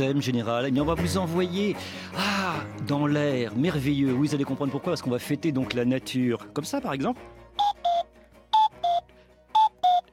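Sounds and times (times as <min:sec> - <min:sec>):
speech: 0:00.0 - 0:07.4
cuckoo calling: 0:07.6 - 0:09.0, 0:09.6 - 0:10.1.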